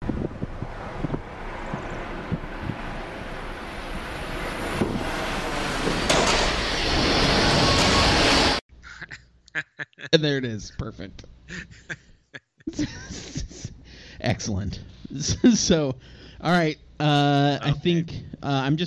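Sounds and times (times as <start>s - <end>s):
train wreck crashing and rumbling sound effect: 2.0s - 8.6s
scattered clanks and thuds: 4.5s - 8.4s
laughter: 8.8s - 10.7s, 11.5s - 13.8s
speech: 10.1s - 12.1s, 12.7s - 13.3s, 14.2s - 18.8s.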